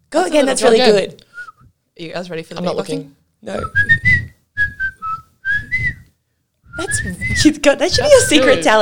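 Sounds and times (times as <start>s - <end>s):
speech: 0.1s - 1.2s, 2.0s - 3.9s, 6.8s - 8.7s
person whistling a short tune: 1.3s - 1.7s, 3.6s - 6.1s, 6.7s - 8.4s.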